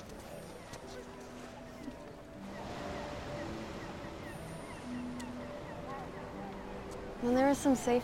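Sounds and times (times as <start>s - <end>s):
faint voices murmuring: 0.0s - 3.7s, 4.8s - 8.0s
ocean waves: 0.0s - 8.0s
speech: 7.2s - 8.0s.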